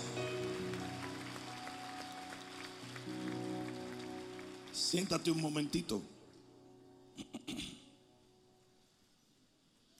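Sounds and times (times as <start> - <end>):
church audience applauding: 0.0 - 6.0
speech: 4.8 - 6.2.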